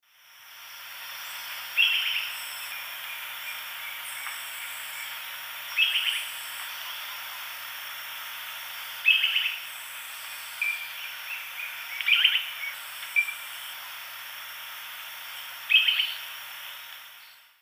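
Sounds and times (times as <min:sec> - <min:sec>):
Conopias parvus calls in South American eastern lowlands: 0:01.2 - 0:07.5, 0:09.0 - 0:14.0, 0:15.3 - 0:17.5.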